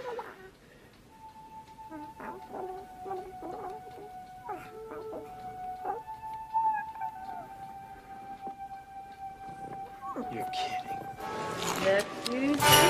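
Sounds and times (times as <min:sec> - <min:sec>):
pet dog howling: 0:01.9 - 0:08.0
speech: 0:10.4 - 0:12.8.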